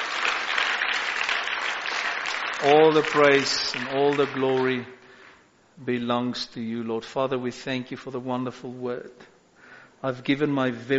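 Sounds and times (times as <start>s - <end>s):
large audience applauding in praise: 0.0s - 5.4s
speech: 2.6s - 5.0s, 5.8s - 9.3s, 10.0s - 10.9s.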